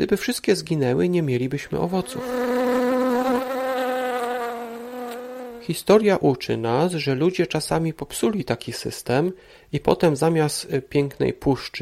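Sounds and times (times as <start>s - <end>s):
speech: 0.0s - 2.6s, 5.6s - 11.8s
bee buzzing: 1.8s - 5.7s.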